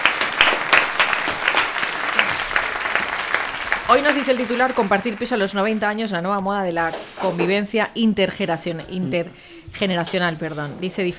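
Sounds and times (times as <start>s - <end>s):
studio audience applause: 0.0s - 6.0s
speech: 3.9s - 11.1s.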